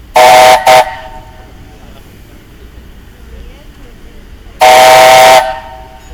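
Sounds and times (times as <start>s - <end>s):
horn: 0.2s - 1.6s, 4.6s - 6.0s.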